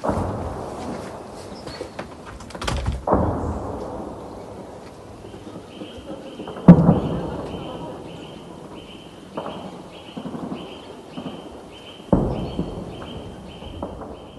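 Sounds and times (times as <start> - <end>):
distant combat explosions: 0.0 - 14.3.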